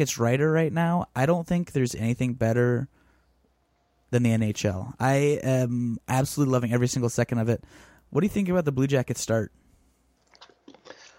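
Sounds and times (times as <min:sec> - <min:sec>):
speech: 0:00.0 - 0:03.0, 0:04.1 - 0:09.6
person sipping from a water bottle: 0:10.2 - 0:11.1
slurping gulps: 0:10.2 - 0:11.1
soft wet mouth clicks: 0:10.2 - 0:11.1.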